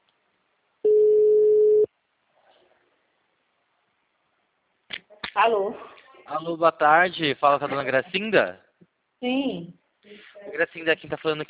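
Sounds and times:
ringback tone of an outgoing telephone call: 0.9 - 1.9
speech: 5.4 - 8.6, 9.2 - 11.4.

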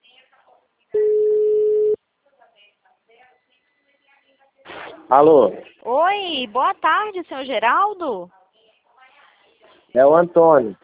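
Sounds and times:
telephone line ringback tone beep: 1.0 - 2.0
speech: 5.1 - 8.4, 9.9 - 10.8.

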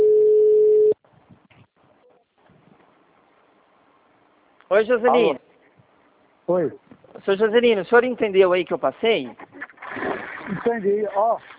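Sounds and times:
telephone ringback tone while placing a call: 0.0 - 1.0
speech: 4.7 - 5.5, 6.5 - 9.5, 10.6 - 11.5.

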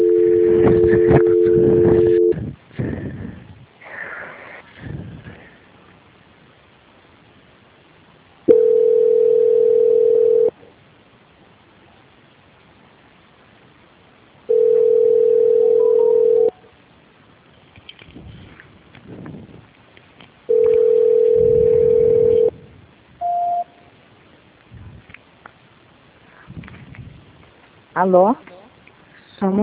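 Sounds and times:
telephone tones during a call transfer: 0.0 - 2.4, 8.5 - 10.5, 14.5 - 16.6, 20.5 - 22.6, 23.2 - 23.8
short higher telephone beep: 23.2 - 23.8
speech: 28.0 - 28.5, 29.4 - 29.6.

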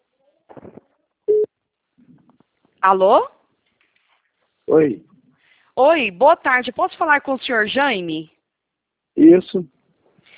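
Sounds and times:
telephone tone while placing a call: 1.3 - 1.5
speech: 2.8 - 3.4, 4.7 - 5.1, 5.8 - 8.3, 9.2 - 9.8.

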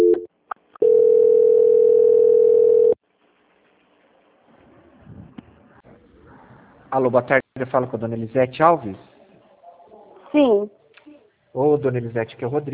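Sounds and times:
steady telephone line tone during a call transfer: 0.0 - 3.0
speech: 7.0 - 9.1, 10.3 - 10.8, 11.6 - 12.7.

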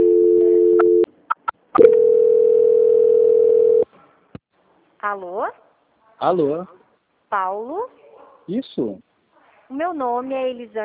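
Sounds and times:
telephone line tone while a call is transferred: 0.0 - 1.1, 1.8 - 3.8
speech: 5.1 - 5.6, 6.2 - 9.1, 9.7 - 10.8.

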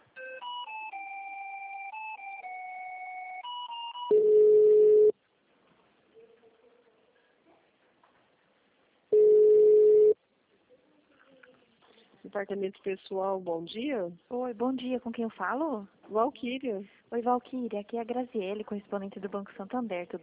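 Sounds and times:
telephone line tones while a call to a city hall is transferred: 0.2 - 5.1, 9.2 - 10.2
speech: 12.4 - 20.2.

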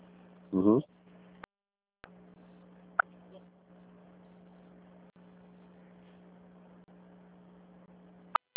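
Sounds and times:
steady low telephone line hum during a call transfer: 0.0 - 8.5
sharp telephone line clicks: 8.3 - 8.5.

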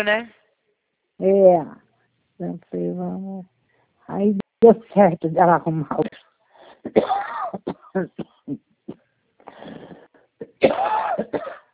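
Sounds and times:
speech: 0.0 - 0.4, 1.2 - 1.8, 2.4 - 6.2, 6.8 - 8.7, 10.6 - 11.6
person with a lingering cough after the flu coughing: 6.8 - 11.7.

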